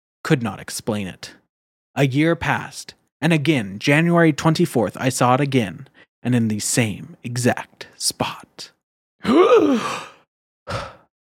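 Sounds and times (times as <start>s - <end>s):
speech: 0.3s - 1.4s, 2.0s - 10.1s, 10.7s - 11.0s
fake exaggerated gasping: 9.2s - 11.1s.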